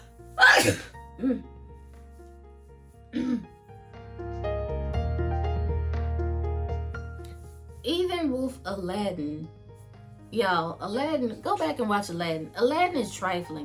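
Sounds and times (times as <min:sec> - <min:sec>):
steady tonal musical background: 0:00.0 - 0:13.6
sneezy sniff: 0:00.4 - 0:01.0
person sneezing: 0:00.4 - 0:01.5
speech: 0:00.6 - 0:01.5, 0:07.8 - 0:09.6, 0:10.3 - 0:13.6.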